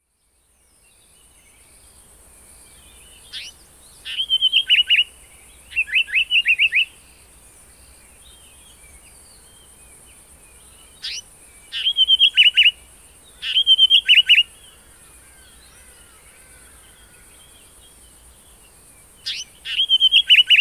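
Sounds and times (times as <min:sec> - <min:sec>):
African Paradise Flycatcher Terpsiphone viridis calling: 0:03.0 - 0:07.0, 0:10.5 - 0:20.5.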